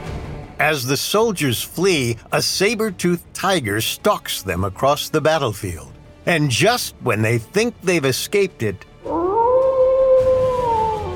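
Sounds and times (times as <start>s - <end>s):
speech: 0.6s - 9.2s
vicious Ice Age dire wolf howling: 9.0s - 11.1s.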